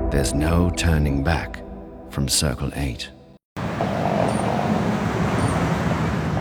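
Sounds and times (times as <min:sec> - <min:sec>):
speech: 0:00.2 - 0:01.6, 0:02.1 - 0:03.1
cars passing on wet tarmac: 0:03.6 - 0:06.3.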